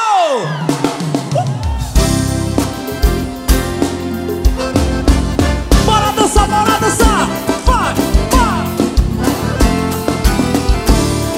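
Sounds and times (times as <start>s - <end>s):
large crowd shouting and cheering with rising whoops: 0.0s - 4.5s, 5.5s - 11.3s
pounding band playing a steady beat: 0.0s - 11.3s.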